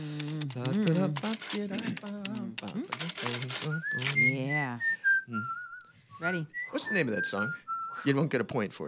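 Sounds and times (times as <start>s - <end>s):
editing machine clicking: 0.0s - 4.2s
speech: 0.6s - 5.6s, 6.2s - 8.8s.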